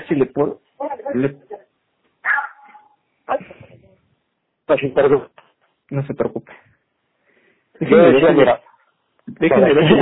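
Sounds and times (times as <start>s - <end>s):
speech: 0.1s - 1.6s, 4.7s - 6.7s, 7.8s - 8.7s, 9.3s - 10.0s
dogs barking in short rough yelps: 2.2s - 3.0s.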